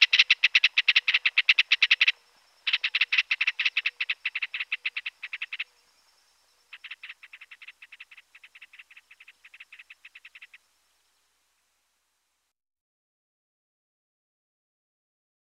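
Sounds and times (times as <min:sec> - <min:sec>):
Ringed kingfisher rattling in grating bursts of fast clicks in Pantanal Brazil: 0:00.0 - 0:05.7, 0:06.7 - 0:10.6.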